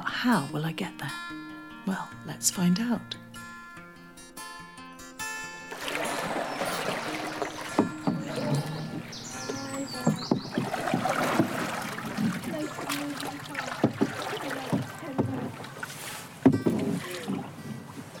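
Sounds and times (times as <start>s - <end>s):
faint outdoor ambience on a sunny day: 0.0s - 18.1s
speech: 0.2s - 3.2s
canoe paddles dipping and splashing in calm canal water: 5.7s - 18.1s.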